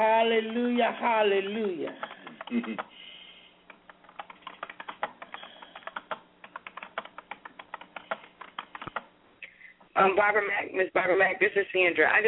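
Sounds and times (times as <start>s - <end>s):
speech: 0.0s - 3.1s, 10.0s - 12.2s
rapid typing on a computer keyboard: 1.5s - 3.0s, 3.7s - 9.1s.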